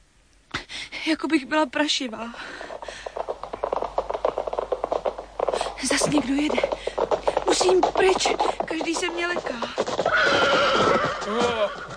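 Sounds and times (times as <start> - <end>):
speech: 1.0 - 2.6, 5.9 - 6.7, 7.6 - 11.9
horse hooves clopping: 2.4 - 11.9
startled horse neighing loudly: 9.9 - 11.9.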